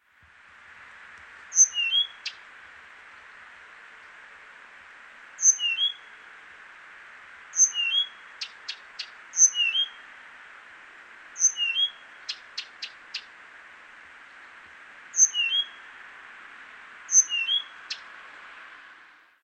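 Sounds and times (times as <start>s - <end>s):
lesser whitethroat singing in Riihimaki: 0.4s - 19.4s.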